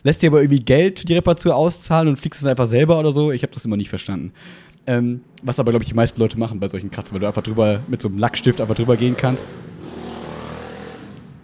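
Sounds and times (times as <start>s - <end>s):
speech: 0.0s - 10.0s
very loud motorcycle passing by: 7.0s - 11.4s.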